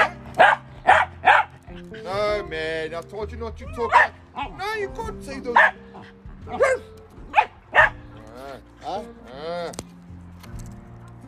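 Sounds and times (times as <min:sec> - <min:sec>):
dogs whining and yelping: 0:00.0 - 0:02.1, 0:03.6 - 0:04.6, 0:05.6 - 0:09.8
two dogs barking: 0:00.0 - 0:02.1, 0:03.7 - 0:04.8, 0:05.4 - 0:09.3
speech: 0:02.4 - 0:07.0.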